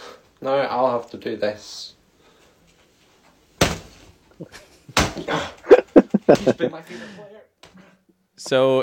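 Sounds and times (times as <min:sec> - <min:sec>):
speech: 0:00.4 - 0:02.0, 0:04.4 - 0:05.7, 0:06.3 - 0:07.5, 0:08.4 - 0:08.8
fists thumping a football jersey: 0:03.6 - 0:04.0, 0:04.9 - 0:05.4
laughter: 0:04.4 - 0:07.2.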